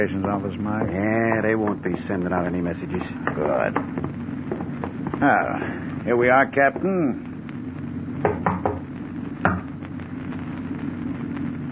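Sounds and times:
speech: 0.0s - 4.6s, 5.2s - 7.3s
low rumble: 0.0s - 11.7s
knocks on a locked storage room door: 8.2s - 8.8s.

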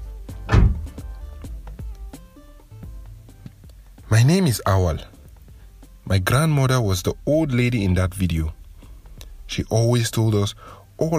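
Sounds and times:
car door shutting with a heavy thunk: 0.4s - 1.2s
speech: 4.1s - 5.2s, 6.1s - 8.6s, 9.6s - 11.1s.

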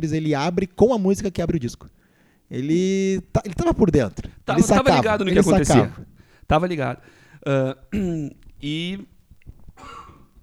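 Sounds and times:
speech: 0.0s - 9.1s
harsh cough: 7.9s - 8.3s, 9.8s - 10.4s.

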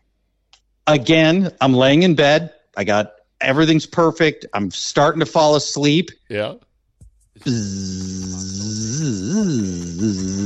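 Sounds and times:
speech: 0.9s - 6.7s, 7.4s - 10.4s
voice imitating a mosquito buzzing: 7.4s - 10.4s.

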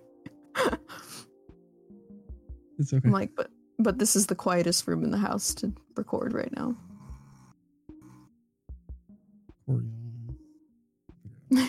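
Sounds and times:
speech: 2.8s - 6.9s
man snoring softly: 6.8s - 8.4s, 9.7s - 10.6s.

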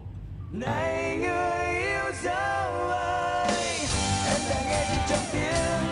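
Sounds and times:
upbeat pop song with full backing band from a car TV commercial: 0.6s - 5.9s.

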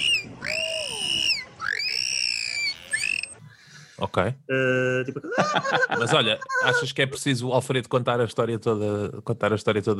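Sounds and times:
dolphin squeaky whistles: 0.0s - 3.4s
speech: 4.0s - 9.9s
laughter: 5.0s - 7.2s.

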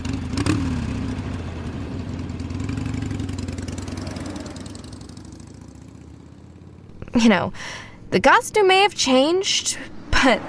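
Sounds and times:
motorcycle engine rumbling as it pulls away: 0.0s - 7.5s
speech: 7.2s - 10.4s.

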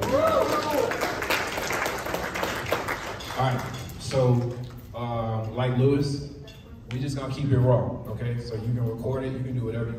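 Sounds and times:
person whooping: 0.0s - 1.1s
audience applauding: 0.0s - 3.7s
speech: 3.4s - 9.9s.

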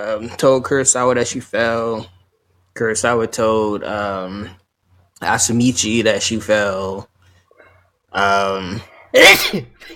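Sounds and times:
speech: 0.0s - 2.2s, 2.8s - 4.6s, 5.2s - 7.1s, 8.1s - 9.9s
person sneezing: 9.2s - 9.7s.

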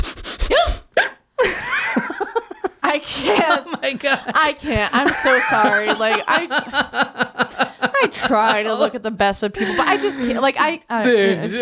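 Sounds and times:
person imitating squeaky hiccups of a woman: 0.5s - 1.3s
laughter: 1.4s - 11.6s
speech: 3.5s - 7.4s, 8.1s - 11.6s.

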